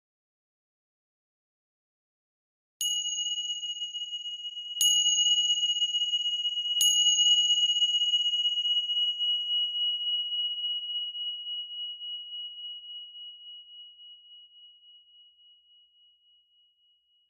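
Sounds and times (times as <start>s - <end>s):
meditation bell ringing: 2.8s - 14.6s.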